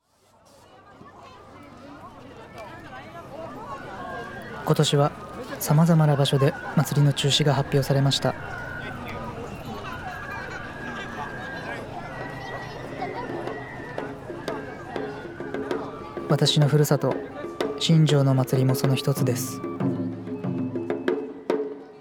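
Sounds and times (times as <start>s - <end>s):
Shinjo festival music: 4.4s - 21.8s
person narrating: 16.3s - 17.2s, 17.8s - 19.6s.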